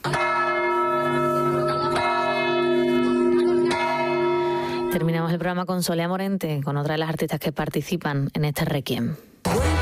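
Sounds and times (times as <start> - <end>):
church bells ringing: 0.0 - 5.4
speech: 4.9 - 9.7.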